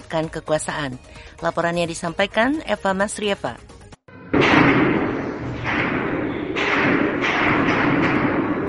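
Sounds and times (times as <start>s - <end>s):
speech: 0.1s - 3.7s
loud heavy bomb blasts: 4.1s - 8.6s
continuous roaring crackling din: 4.3s - 8.6s
bursts of gunfire: 4.4s - 8.6s.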